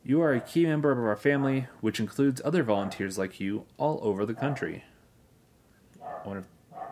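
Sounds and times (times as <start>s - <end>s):
speech: 0.1s - 4.9s, 6.2s - 6.6s
dog barking: 0.3s - 0.6s, 2.8s - 3.1s, 4.4s - 4.7s, 6.0s - 6.9s.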